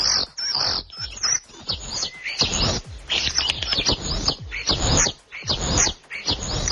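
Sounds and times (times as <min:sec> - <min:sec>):
common starling singing: 0:00.0 - 0:06.7.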